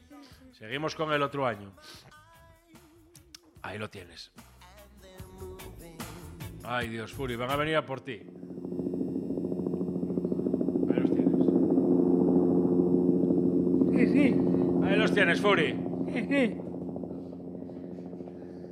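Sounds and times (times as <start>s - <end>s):
speech: 0.6s - 2.2s, 3.6s - 4.5s, 6.6s - 8.6s, 15.2s - 16.6s
helicopter flying overhead: 5.6s - 18.7s.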